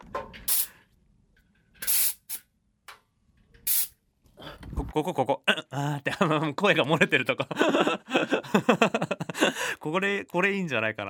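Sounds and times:
bursts of pressurized air hissing from a truck during a pre-trip check: 0.5 - 0.8, 1.8 - 2.4, 3.7 - 3.9
laughter: 5.0 - 9.7
speech: 5.0 - 11.0.

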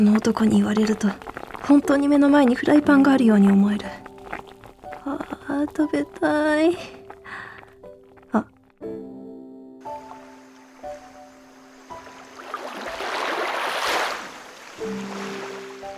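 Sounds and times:
speech: 0.0 - 4.1, 5.0 - 7.0, 8.3 - 9.0
ocean waves rushing: 10.0 - 15.9.

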